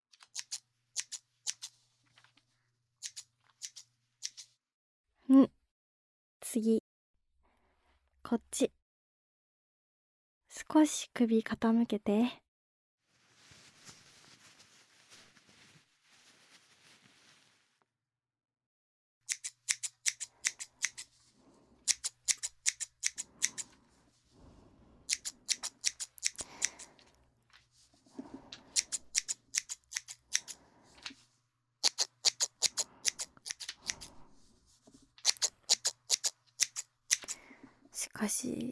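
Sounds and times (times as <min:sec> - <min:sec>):
scissors cutting a junior student's hair: 0:00.2 - 0:01.8, 0:03.0 - 0:04.5, 0:19.3 - 0:21.1, 0:21.9 - 0:23.7, 0:25.1 - 0:26.9, 0:28.7 - 0:30.6, 0:31.8 - 0:34.2, 0:35.2 - 0:37.4
soft rustle: 0:01.7 - 0:02.8, 0:13.0 - 0:17.9, 0:21.0 - 0:21.9, 0:23.6 - 0:25.1, 0:26.8 - 0:28.8, 0:30.6 - 0:31.5, 0:33.7 - 0:35.2
speech: 0:05.3 - 0:05.5, 0:06.6 - 0:06.8, 0:08.3 - 0:08.8, 0:10.6 - 0:12.4.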